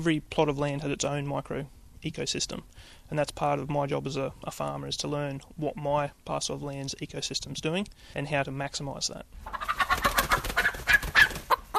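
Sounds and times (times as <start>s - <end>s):
speech: 0.0s - 9.7s
chickens clucking in a market garden: 9.4s - 11.7s.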